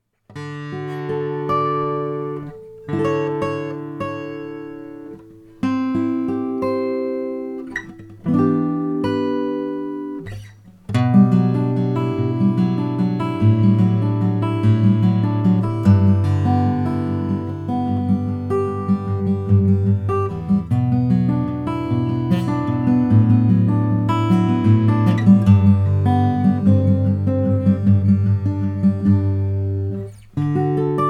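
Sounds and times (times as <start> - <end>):
Honduran rosewood acoustic guitar: 0.0 - 31.0.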